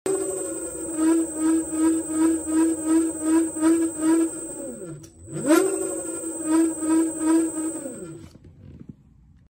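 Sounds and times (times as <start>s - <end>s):
electric scooter: 0.1s - 8.4s.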